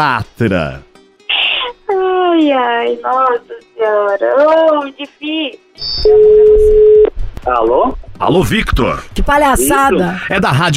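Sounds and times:
speech: 0:00.0 - 0:00.9, 0:02.4 - 0:10.7
high beep: 0:05.8 - 0:07.1
telephone line tone: 0:05.9 - 0:07.1.

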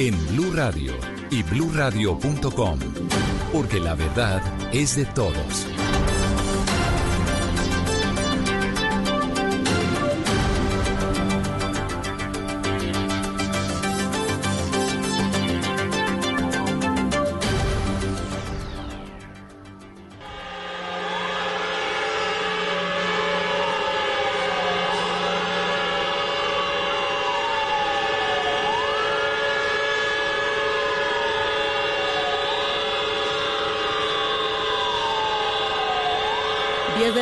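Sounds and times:
speech: 0:00.0 - 0:06.0
air raid sirens wailing: 0:00.0 - 0:37.1.

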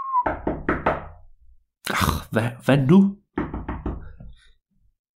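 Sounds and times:
firm knocks on a door: 0:00.2 - 0:01.2, 0:03.3 - 0:04.4
speech: 0:02.3 - 0:03.2.

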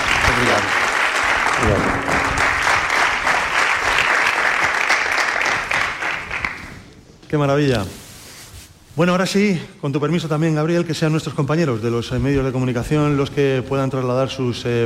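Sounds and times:
audience applauding at a press presentation: 0:00.0 - 0:06.8
speech: 0:07.3 - 0:08.0, 0:09.0 - 0:14.8.

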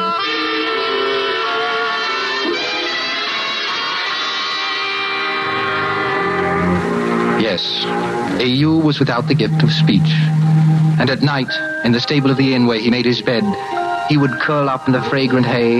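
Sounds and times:
piercing howling shrieking sound effect: 0:00.2 - 0:11.2
speech: 0:08.4 - 0:10.4, 0:11.0 - 0:15.7.

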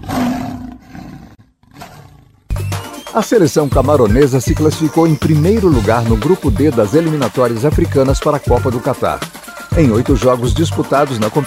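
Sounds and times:
lion roaring with a deep rumbling bellow: 0:00.0 - 0:02.5
speech: 0:03.1 - 0:11.4.

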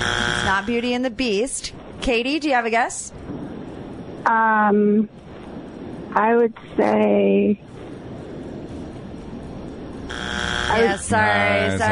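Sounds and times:
quiz game show buzzer electronic tone: 0:00.0 - 0:00.8, 0:10.1 - 0:11.9
low hum: 0:00.0 - 0:11.9
speech: 0:00.5 - 0:03.3, 0:04.2 - 0:05.2, 0:06.1 - 0:07.7, 0:10.7 - 0:11.9.

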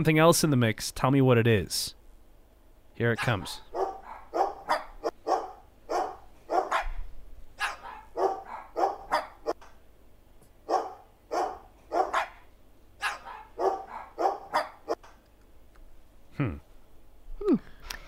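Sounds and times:
speech: 0:00.0 - 0:02.0, 0:03.0 - 0:03.6
dogs barking: 0:03.2 - 0:07.0, 0:07.6 - 0:09.6, 0:10.6 - 0:15.1.

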